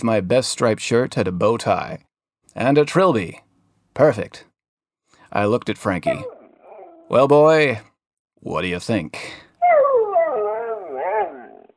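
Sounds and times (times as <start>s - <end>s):
speech: 0.0s - 4.5s, 5.3s - 6.4s, 7.1s - 9.4s
dog howling and whimpering: 6.1s - 7.2s, 9.6s - 11.7s.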